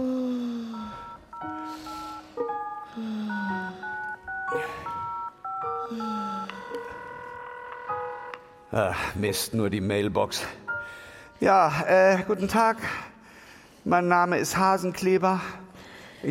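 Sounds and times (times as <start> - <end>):
telephone dialing tones, short electronic tones: 0.6 - 8.5
speech: 8.7 - 10.6, 11.4 - 13.1, 13.8 - 15.6, 16.2 - 16.3.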